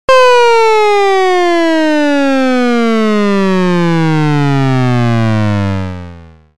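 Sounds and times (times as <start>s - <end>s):
meter down attack sound effect: 0.1s - 6.4s.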